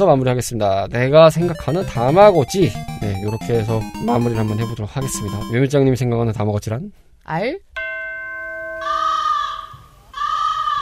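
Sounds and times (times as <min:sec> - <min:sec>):
speech: 0:00.0 - 0:07.7
crow cawing: 0:10.2 - 0:10.8.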